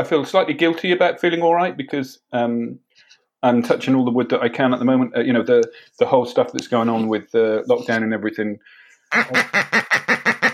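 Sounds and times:
speech: 0.0s - 2.8s, 3.4s - 10.1s
duck quacking loudly and rapidly with harsh nasal quacks: 9.1s - 10.5s.

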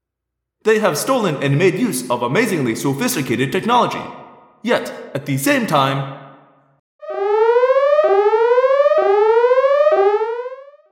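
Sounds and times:
speech: 0.6s - 6.2s
loud piercing alarm siren wailing in rising sweeps: 7.0s - 10.9s.

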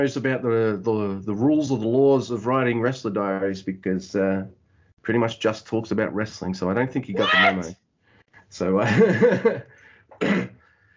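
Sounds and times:
speech: 0.0s - 7.8s, 8.5s - 10.4s
laughter: 7.2s - 7.7s, 8.8s - 9.6s
raspy coughing into a microphone: 10.1s - 10.7s.

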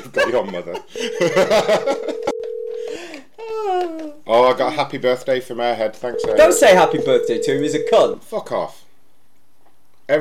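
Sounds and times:
laughter: 0.0s - 2.4s
speech: 0.2s - 2.1s, 4.3s - 8.8s
steady single-pitched telephone dial tone: 2.0s - 3.1s, 6.2s - 8.0s.

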